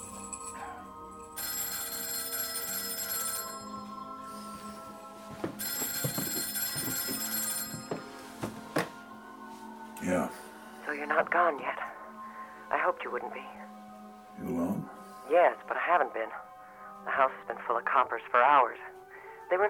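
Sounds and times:
telephone ringing with electronic trill: 1.4s - 4.8s, 5.4s - 8.9s
speech: 10.1s - 10.4s, 11.1s - 11.9s, 12.9s - 13.7s, 14.4s - 16.4s, 17.0s - 18.9s, 19.5s - 19.6s.

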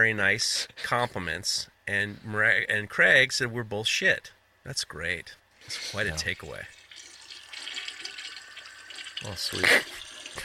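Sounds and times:
speech: 0.0s - 6.8s, 9.2s - 10.4s
toilet flushing: 6.7s - 10.4s.

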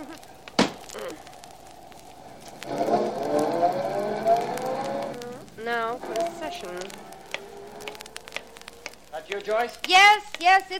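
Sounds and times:
car engine starting and revving as the car is driven into a garage: 1.8s - 8.9s
speech: 9.3s - 10.7s.

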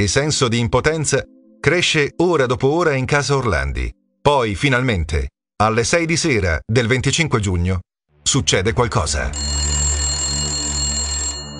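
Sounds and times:
speech: 0.0s - 9.7s
telephone ringing in a family home: 9.4s - 11.5s.

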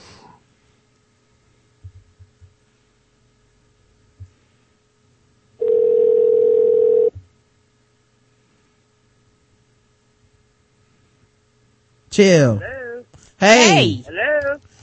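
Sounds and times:
quiet hum: 0.0s - 14.8s
steady telephone tone while adding a number to a call: 5.6s - 7.1s
speech: 12.2s - 12.7s, 13.4s - 14.6s.

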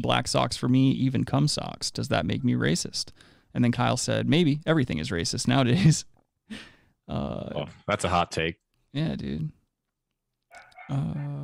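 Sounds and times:
speech: 0.0s - 9.6s, 10.9s - 11.4s
dog barking with a rough yap and drawn-out tonal bark: 10.5s - 11.3s.

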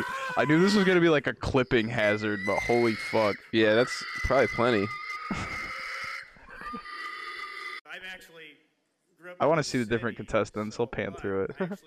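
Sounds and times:
person imitating a pig in a pig call: 0.0s - 1.1s, 2.0s - 7.8s
speech: 0.4s - 5.5s, 9.2s - 11.8s.

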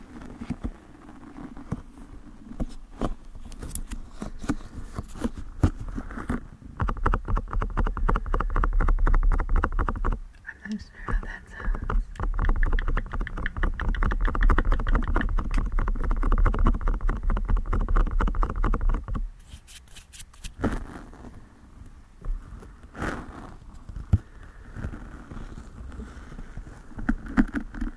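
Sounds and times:
fingertip scratching on soft surfaces: 0.0s - 27.9s
fingertip tapping on soft surfaces: 6.8s - 19.2s.

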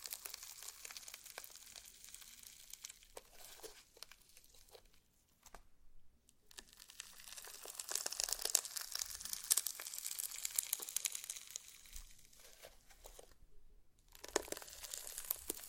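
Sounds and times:
slime being squeezed with crackly pops and squelches: 0.0s - 4.6s, 6.5s - 12.2s, 14.1s - 15.6s.

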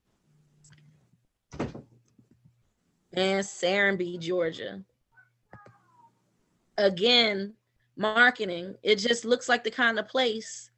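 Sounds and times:
door swinging shut with a thump: 1.5s - 1.9s
speech: 3.2s - 4.9s, 6.8s - 10.7s.

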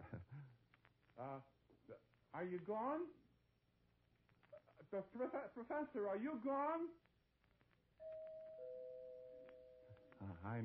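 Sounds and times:
speech: 1.2s - 3.2s, 4.9s - 7.0s, 10.4s - 10.6s
two-tone doorbell chime: 8.0s - 10.2s.

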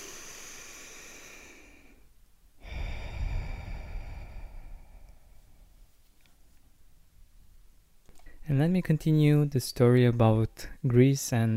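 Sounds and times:
deep breath in and out: 0.0s - 5.9s
speech: 8.5s - 11.5s.

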